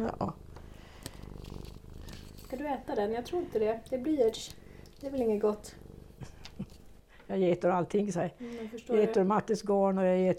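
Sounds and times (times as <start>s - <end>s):
speech: 0.0s - 0.2s, 2.5s - 5.8s, 7.3s - 10.3s
cat purring: 0.0s - 10.3s.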